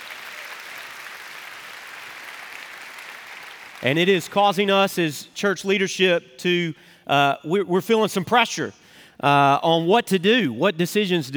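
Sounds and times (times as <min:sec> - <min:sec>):
church audience applauding: 0:00.0 - 0:04.4
speech: 0:03.8 - 0:11.3.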